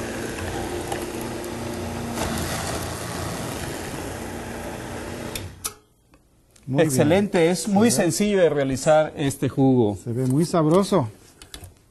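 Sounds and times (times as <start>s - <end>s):
juicer machine whirring: 0.0s - 5.6s
speech: 6.7s - 11.2s.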